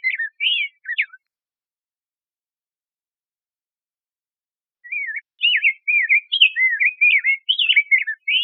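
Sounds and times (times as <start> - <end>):
rose-breasted grosbeak singing warbled phrases: 0.0 - 1.3, 4.8 - 8.4.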